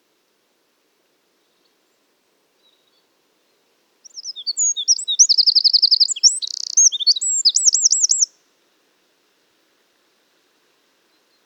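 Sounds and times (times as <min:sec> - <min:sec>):
Eurasian wren (Troglodytes troglodytes) singing a high-pitched twittering song: 0:04.0 - 0:08.3.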